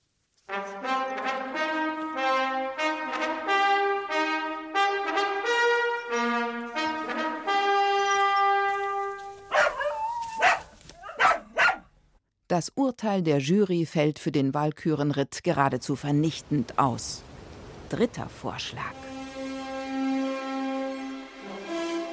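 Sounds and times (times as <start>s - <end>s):
horn melody of sustained harmonic notes: 0.5s - 9.7s, 18.9s - 22.1s
dog barking: 9.5s - 11.9s
speech: 12.6s - 17.3s, 17.9s - 19.1s.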